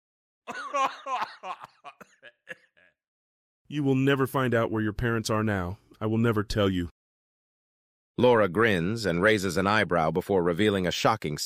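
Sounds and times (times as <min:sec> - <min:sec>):
speech: 0:00.5 - 0:02.6, 0:03.7 - 0:07.0, 0:08.2 - 0:11.4
person laughing: 0:00.5 - 0:02.9
rough coughs: 0:00.5 - 0:02.9.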